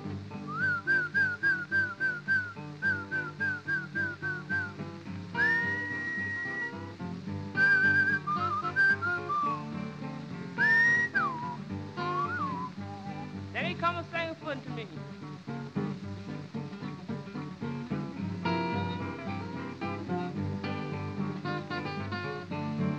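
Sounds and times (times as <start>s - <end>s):
instrumental music backing: 0.0s - 22.9s
person whistling to call a horse: 0.5s - 4.8s, 5.4s - 6.8s, 7.6s - 9.8s, 10.6s - 13.4s.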